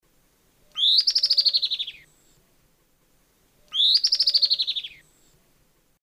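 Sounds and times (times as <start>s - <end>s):
Myiopagis flavivertex call in South America Eastern Lowlands: 0.6s - 2.1s, 3.6s - 5.1s.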